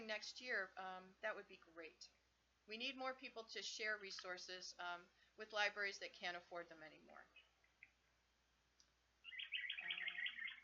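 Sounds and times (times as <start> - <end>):
speech: 0.1 - 7.4
birds chirping in high tweets: 7.2 - 8.2, 9.2 - 10.6
lower warbling call: 9.2 - 10.6.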